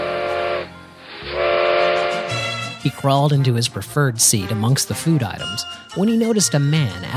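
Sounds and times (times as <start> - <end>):
steam train whistle blasts through giant redwoods: 0.0 - 2.8
speech: 2.8 - 7.1.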